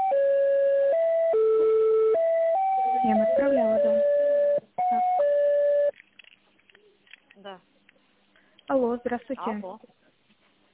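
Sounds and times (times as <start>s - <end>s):
electronic telephone tones during office call transfer: 0.0s - 5.9s
speech: 3.0s - 4.1s, 8.8s - 10.0s.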